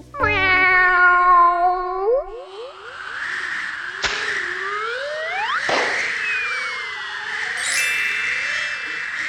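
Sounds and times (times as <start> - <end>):
cat meowing: 0.2 - 2.9
wavering warbling tones: 1.6 - 9.2
sharp whip-like swishes: 4.0 - 4.4.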